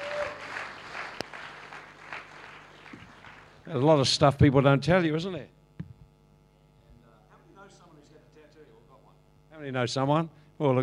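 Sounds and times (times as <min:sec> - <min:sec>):
audience applauding in a large room: 0:00.0 - 0:03.8
speech: 0:03.7 - 0:05.6, 0:09.6 - 0:10.8.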